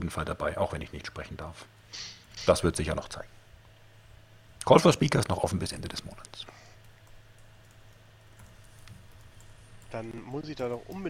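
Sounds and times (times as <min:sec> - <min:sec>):
speech: 0:00.1 - 0:03.4, 0:04.6 - 0:06.6, 0:09.9 - 0:11.0
keyboard typing: 0:06.8 - 0:11.0.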